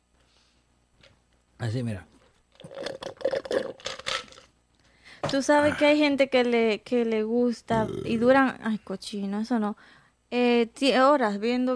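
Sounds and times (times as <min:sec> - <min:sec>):
speech: 0:01.6 - 0:02.2, 0:05.3 - 0:11.7
ice being chewed: 0:02.5 - 0:04.5.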